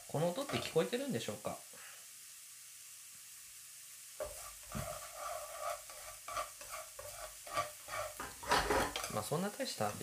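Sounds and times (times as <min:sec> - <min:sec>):
fried rice sizzling in a hot pan: 0:00.0 - 0:10.0
scraping and tossing strokes in a pan: 0:00.1 - 0:01.0, 0:04.2 - 0:10.0
speech: 0:00.1 - 0:01.8, 0:09.3 - 0:10.0.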